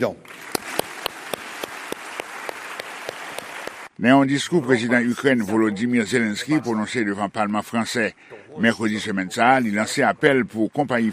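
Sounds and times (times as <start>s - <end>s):
speech: 0.0s - 0.6s, 4.0s - 11.1s
faint scattered applause in a council chamber: 0.2s - 3.9s
rhythmic synchronized clapping in a council chamber: 0.2s - 3.9s.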